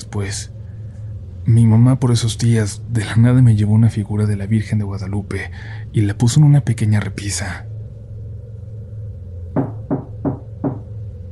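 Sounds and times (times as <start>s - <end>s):
speech: 0.0s - 0.6s, 1.5s - 7.7s
low hum: 0.0s - 11.2s
firm knocks on a door: 9.6s - 10.9s.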